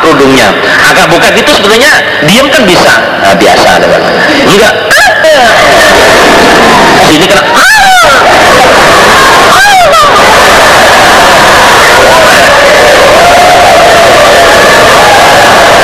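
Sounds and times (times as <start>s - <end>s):
dense roaring crowd: 0.0s - 15.8s
loud shouting and wailing voices: 0.0s - 15.8s
speech: 0.2s - 7.8s
shrill falling screams: 5.2s - 15.8s.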